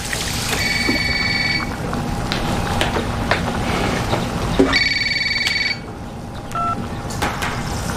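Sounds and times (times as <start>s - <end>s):
rumbling noise: 0.0s - 7.9s
telephone ringing in a home: 0.6s - 1.7s, 4.7s - 5.9s.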